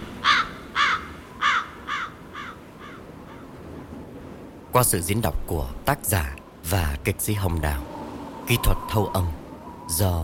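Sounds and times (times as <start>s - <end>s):
crows cawing: 0.1s - 3.6s
speech: 4.8s - 7.9s, 8.5s - 10.2s.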